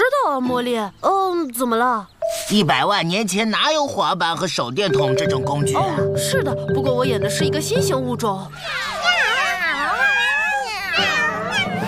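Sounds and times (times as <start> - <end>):
speech: 0.3 - 8.9
several cats meowing and caterwauling: 8.5 - 11.8.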